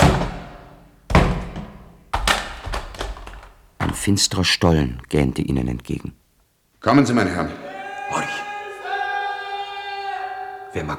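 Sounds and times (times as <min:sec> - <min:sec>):
axe breaking open a heavy locked wooden cellar door: 0:00.0 - 0:03.1
small knocks: 0:00.0 - 0:04.1
speech: 0:04.0 - 0:06.2, 0:06.8 - 0:08.2, 0:10.8 - 0:10.9.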